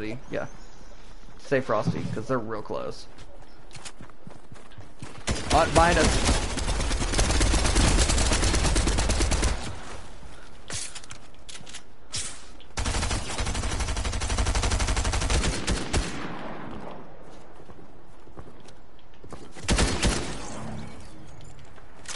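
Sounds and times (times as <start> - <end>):
speech: 0.0 - 0.6, 1.4 - 3.9, 5.5 - 6.5
video game gunfire: 5.2 - 10.0, 12.8 - 17.0, 19.6 - 20.8.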